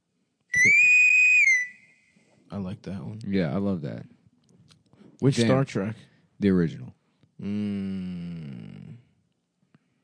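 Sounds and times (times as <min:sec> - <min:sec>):
sci-fi starship whistle sound effect: 0:00.5 - 0:02.1
speech: 0:02.5 - 0:04.2, 0:05.2 - 0:08.8.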